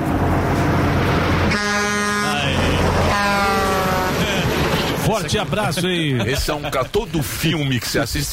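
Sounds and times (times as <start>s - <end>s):
steady low engine rumble: 0.0s - 8.3s
truck air horn blasts: 1.5s - 4.2s
laughter: 2.4s - 8.2s
speech: 5.2s - 8.3s.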